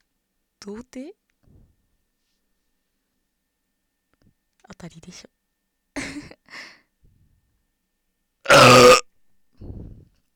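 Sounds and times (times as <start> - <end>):
speech: 0.6 - 1.2, 4.7 - 5.4
loud drawn-out burp: 8.5 - 9.1.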